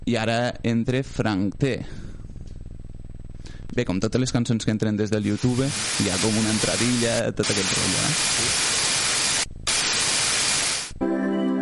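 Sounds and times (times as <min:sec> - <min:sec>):
speech: 0:00.1 - 0:02.1, 0:03.7 - 0:08.7
buzzing tonal electronic hum: 0:00.8 - 0:03.6, 0:05.2 - 0:11.0
loud harsh static hiss: 0:05.2 - 0:11.0.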